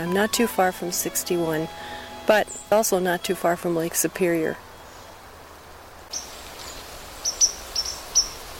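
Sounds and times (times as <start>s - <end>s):
speech: 0.0s - 4.7s
steady hiss: 0.0s - 8.5s
white-throated sparrow calling near Lake Superior and Highway 61: 6.1s - 8.4s.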